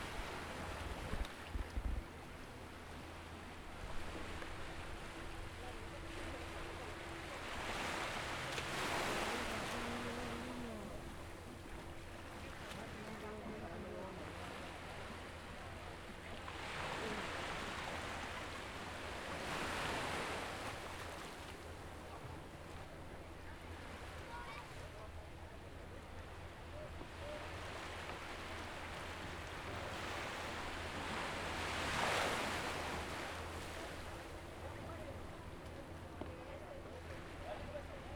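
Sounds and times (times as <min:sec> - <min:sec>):
sea on a beach in Jalisco: 0:00.0 - 0:38.1.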